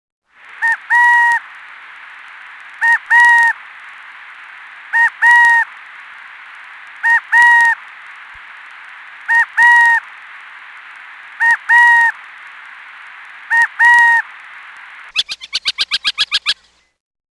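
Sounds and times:
burrowing owl calling: 0.5s - 1.5s, 2.7s - 3.6s, 4.8s - 5.8s, 7.0s - 7.9s, 9.2s - 10.2s, 11.2s - 12.4s, 13.4s - 14.4s, 15.0s - 16.9s.

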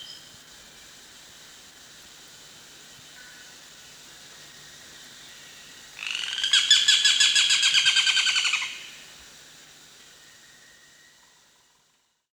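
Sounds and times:
olive-backed woodpecker: 6.0s - 8.9s.

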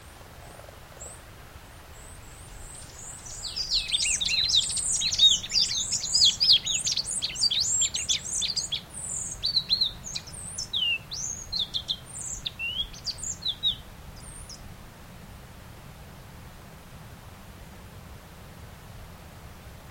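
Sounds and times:
pale-naped brush finch calling: 2.0s - 14.6s.

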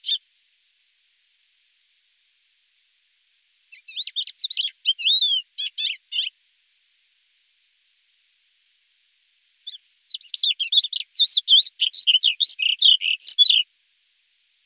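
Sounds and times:
Thekla's lark song of varied twittering phrases: 0.0s - 0.2s, 3.7s - 6.3s, 9.6s - 13.6s.

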